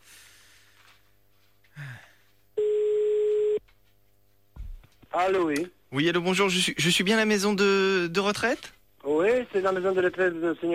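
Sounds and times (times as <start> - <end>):
telephone line tone while placing a call: 2.6 - 3.6
speech: 5.2 - 10.7.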